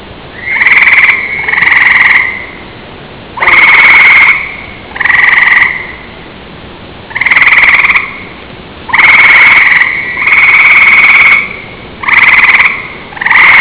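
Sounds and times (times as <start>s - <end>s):
northern gray frog: 0.4s - 2.6s, 3.4s - 6.1s, 7.1s - 8.3s, 8.9s - 13.5s.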